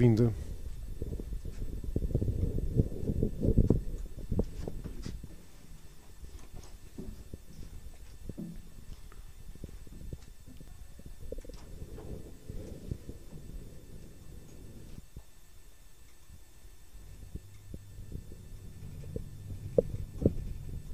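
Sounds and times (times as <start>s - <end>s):
speech: 0.0s - 0.4s
low rumbling outdoor wash through a microphone windscreen: 0.0s - 5.3s, 7.2s - 20.9s
light rain falling on a cold day: 8.2s - 20.9s.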